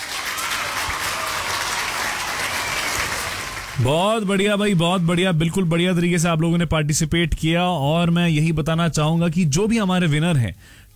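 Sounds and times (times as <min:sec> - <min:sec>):
crowd applause: 0:00.0 - 0:05.8
speech: 0:03.8 - 0:10.9.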